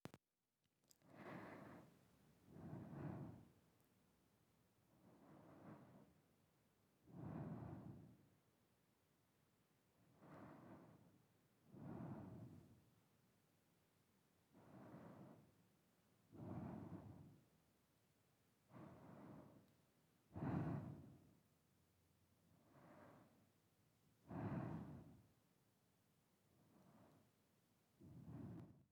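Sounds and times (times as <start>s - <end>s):
normal breathing: 0.9s - 3.6s, 4.9s - 6.4s, 7.0s - 8.4s, 10.0s - 12.9s, 14.5s - 15.6s, 16.2s - 17.5s, 18.6s - 21.4s, 22.5s - 23.6s, 24.2s - 25.4s, 26.5s - 27.4s, 28.0s - 28.8s.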